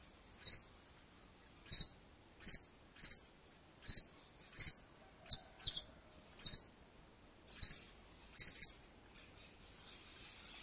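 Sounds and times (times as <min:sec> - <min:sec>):
scimitar-billed woodcreeper Drymornis bridgesii calling: 0:00.3 - 0:00.8, 0:01.4 - 0:06.8, 0:07.4 - 0:10.6.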